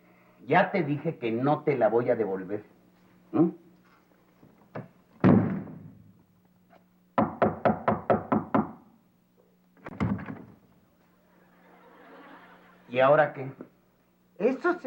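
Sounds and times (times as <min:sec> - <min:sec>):
speech: 0:00.5 - 0:03.6, 0:13.0 - 0:13.7, 0:14.4 - 0:14.8
loud knocking on a door: 0:07.2 - 0:08.8
laughter: 0:11.1 - 0:13.2.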